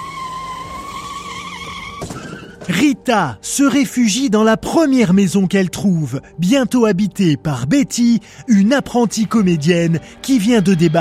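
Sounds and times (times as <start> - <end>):
car tires squealing in a long skid: 0.0 - 2.8
speech: 2.0 - 11.0.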